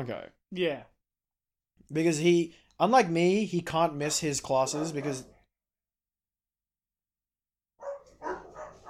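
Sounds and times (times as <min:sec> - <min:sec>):
speech: 0:00.0 - 0:00.9, 0:01.8 - 0:05.4
dogs barking at each other through fence: 0:07.8 - 0:08.8.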